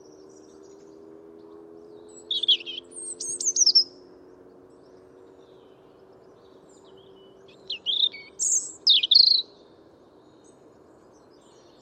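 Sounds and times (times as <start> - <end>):
European robin song: 0.0 - 11.8.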